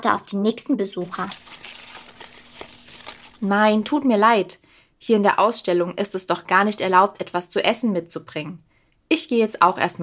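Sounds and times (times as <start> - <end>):
speech: 0.0 - 1.6, 3.4 - 10.0
leaves rustling as someone hides in a museum exhibition: 1.0 - 3.9.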